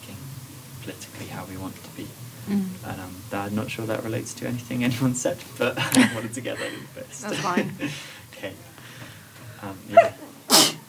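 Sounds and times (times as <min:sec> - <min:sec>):
speech: 0:00.8 - 0:08.7, 0:09.6 - 0:10.2
laughter: 0:05.6 - 0:08.2, 0:09.7 - 0:10.3
person sneezing: 0:10.0 - 0:10.8.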